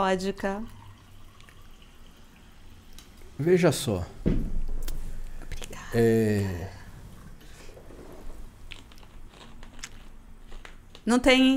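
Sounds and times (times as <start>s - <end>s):
speech: 0.0s - 0.8s, 3.4s - 4.6s, 5.9s - 6.8s, 11.1s - 11.5s
sparkling water being poured: 0.6s - 3.9s.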